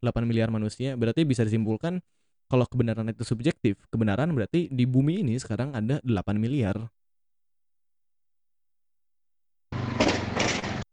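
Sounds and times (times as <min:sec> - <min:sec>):
speech: 0:00.0 - 0:07.0
motorcycle engine revving: 0:09.7 - 0:10.9.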